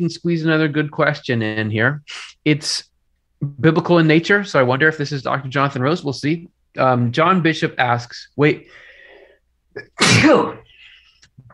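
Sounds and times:
speech: 0:00.0 - 0:08.8, 0:09.8 - 0:10.6
person sneezing: 0:09.8 - 0:11.0.

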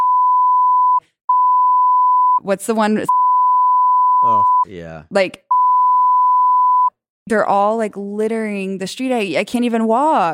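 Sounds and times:
censor bleep tone: 0:00.0 - 0:02.4, 0:03.1 - 0:04.7, 0:05.5 - 0:07.0
speech: 0:02.4 - 0:03.2, 0:04.2 - 0:05.4, 0:07.3 - 0:10.3.

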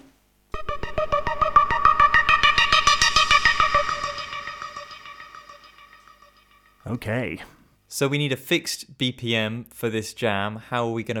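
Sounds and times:
bright buzzy supersaw preset on a wavetable synthesizer through an arpeggiator: 0:00.6 - 0:06.8
speech: 0:06.9 - 0:11.1.

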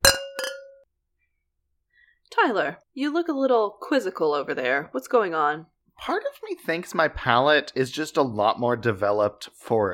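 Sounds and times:
wine glasses clinking in a toast at a wine tasting: 0:00.0 - 0:00.8
speech: 0:02.4 - 0:09.9.

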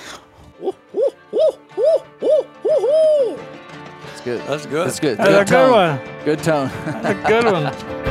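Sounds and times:
laughter: 0:00.5 - 0:03.4, 0:05.1 - 0:06.0, 0:06.5 - 0:07.9
man imitating owl hoots with his voice: 0:00.5 - 0:03.4
speech: 0:04.2 - 0:07.9.

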